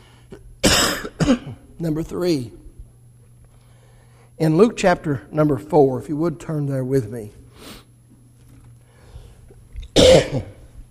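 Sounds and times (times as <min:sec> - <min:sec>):
harsh cough: 0:00.6 - 0:01.6, 0:10.0 - 0:10.7
speech: 0:01.3 - 0:02.6, 0:04.4 - 0:07.8
rough throat-clearing rasp: 0:10.0 - 0:10.6.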